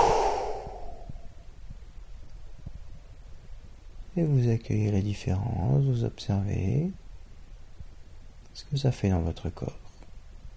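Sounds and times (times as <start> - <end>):
deep exhale releasing a held breath: 0.0 - 1.3
speech: 4.2 - 7.0, 8.6 - 9.8.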